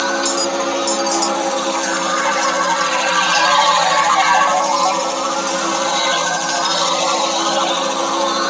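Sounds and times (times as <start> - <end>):
ship data pillar ambience loop: 0.0 - 8.4.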